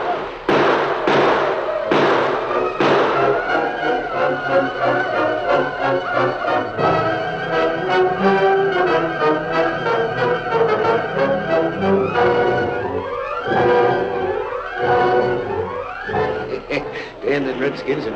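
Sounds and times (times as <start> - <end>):
dense continuous din of battle noise and commotion: 0.0 - 18.1
rifle gunfire in a battle at a train: 0.5 - 3.6
laughter: 16.1 - 18.1
speech: 17.8 - 18.1.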